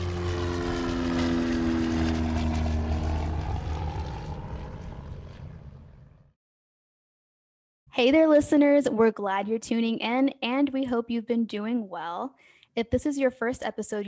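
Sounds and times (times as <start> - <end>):
propeller airplane taking off: 0.0 - 6.4
speech: 8.0 - 14.0.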